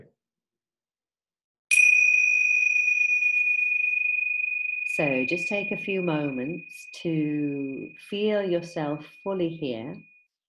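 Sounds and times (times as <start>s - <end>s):
bell rung to start meditation: 1.7s - 8.0s
speech: 5.0s - 10.1s.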